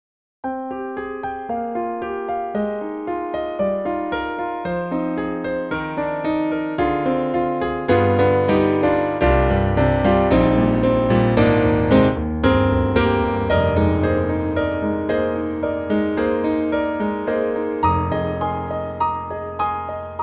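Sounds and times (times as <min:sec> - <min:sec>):
synthesizer grand piano acoustic tone: 0:00.4 - 0:20.2.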